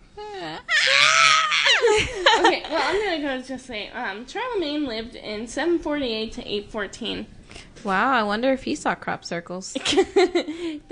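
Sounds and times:
yawning scream: 0.6s - 1.9s
speech: 3.1s - 10.8s.

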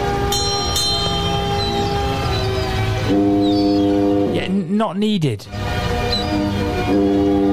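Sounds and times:
huge foghorn blast: 0.0s - 4.5s, 5.5s - 7.5s
speech: 4.8s - 5.6s, 6.9s - 7.2s.

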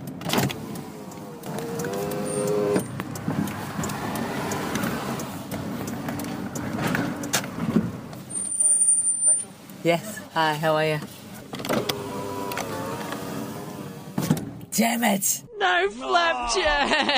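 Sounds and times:
car engine and road rumble inside a slow-moving car: 0.0s - 15.2s
car electric window whir: 0.2s - 3.0s, 11.4s - 14.4s
speech: 9.8s - 11.1s, 14.8s - 17.1s
laughter: 16.2s - 17.1s.

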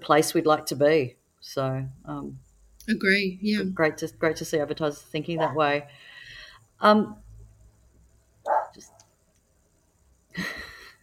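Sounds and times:
speech: 0.0s - 6.1s, 6.8s - 7.2s, 8.7s - 9.0s
dogs barking at home: 5.4s - 5.7s, 8.4s - 8.9s.

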